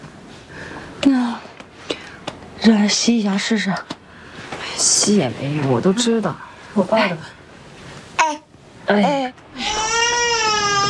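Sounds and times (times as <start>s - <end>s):
speech: 2.6s - 4.0s, 4.8s - 7.4s, 8.9s - 9.4s
infant crying with high-pitched wails: 9.6s - 10.8s.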